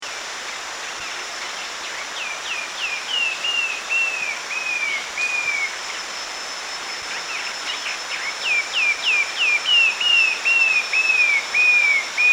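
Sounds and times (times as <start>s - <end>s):
steady high hiss: 0.0s - 12.3s
short-tailed babbler whistled call in Danum Borneo: 2.2s - 6.1s, 6.8s - 12.3s.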